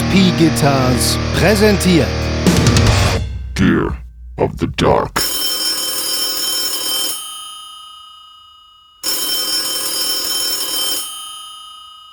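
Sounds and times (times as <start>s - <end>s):
speech: 0.2s - 2.8s, 3.6s - 5.2s
old-fashioned mechanical telephone bell on a 1970s telephone ringing: 5.3s - 8.0s, 8.7s - 12.1s.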